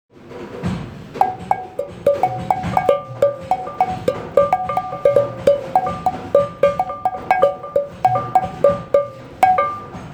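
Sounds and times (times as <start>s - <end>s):
kling klong chime: 1.2s - 10.1s.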